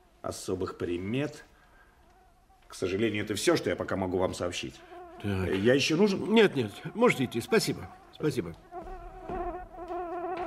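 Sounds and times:
speech: 0.2s - 1.5s, 2.7s - 8.7s
housefly buzzing: 4.5s - 10.4s.

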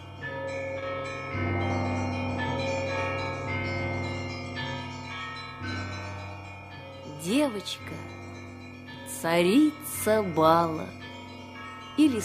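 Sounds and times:
church bells pealing: 0.0s - 12.2s
speech: 7.4s - 8.2s, 9.2s - 11.0s, 12.0s - 12.2s.

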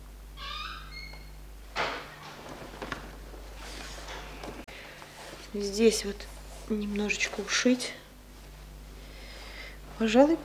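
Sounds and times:
wardrobe door creaking open: 0.4s - 4.6s
rustling and shuffling: 2.0s - 10.4s
speech: 5.5s - 8.0s, 10.0s - 10.4s.

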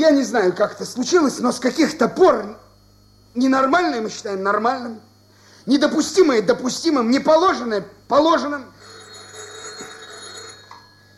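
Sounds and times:
speech: 0.0s - 2.6s, 3.4s - 8.8s
telephone bell ringing with a metallic trill: 8.8s - 11.1s.

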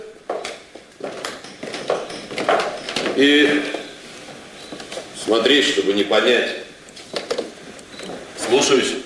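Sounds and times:
horse hooves clip-clopping: 0.3s - 3.9s
speech: 3.2s - 3.8s, 5.3s - 6.6s, 8.5s - 9.0s.

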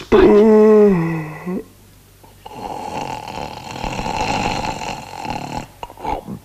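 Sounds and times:
person snoring: 0.1s - 6.4s
shorter snorting breaths: 2.3s - 6.4s.

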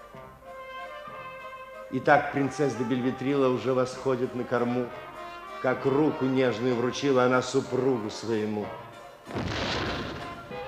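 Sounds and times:
speech: 1.9s - 9.5s
cannon-like boom from a ceremonial salute: 9.3s - 10.6s.

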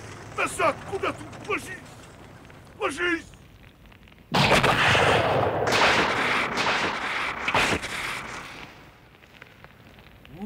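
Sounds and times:
sharp blasts and crackling bursts: 0.0s - 10.4s
speech: 0.4s - 2.0s, 2.8s - 3.3s
loud explosion of rockets and gas roaring: 4.3s - 9.0s.

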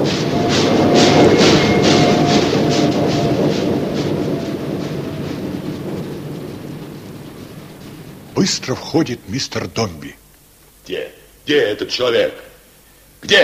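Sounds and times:
train wheels clattering over rail joints: 0.0s - 9.9s
train running at full speed along the track: 0.0s - 10.3s
speech: 8.4s - 10.2s, 10.9s - 12.5s, 13.2s - 13.4s.

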